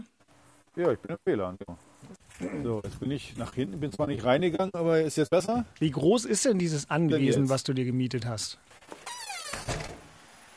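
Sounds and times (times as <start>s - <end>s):
speech: 0.8s - 8.9s
door squeaking on its hinges: 8.8s - 10.2s
door shutting with a solid thud: 9.3s - 10.2s.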